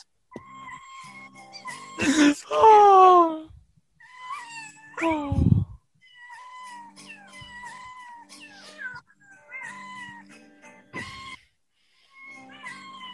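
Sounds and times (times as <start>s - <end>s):
processed cat meows pitched into a bouncy melody: 0.3s - 2.2s, 4.0s - 11.5s, 12.1s - 13.1s.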